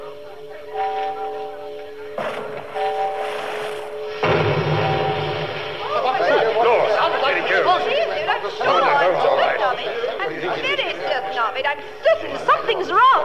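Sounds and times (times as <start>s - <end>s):
agitated crowd chattering: 0.0s - 4.2s, 4.9s - 13.2s
sustained tone: 0.0s - 7.3s, 10.6s - 12.0s
speech: 2.2s - 3.3s, 7.2s - 13.2s
fireworks signal explosion boom: 3.9s - 5.8s.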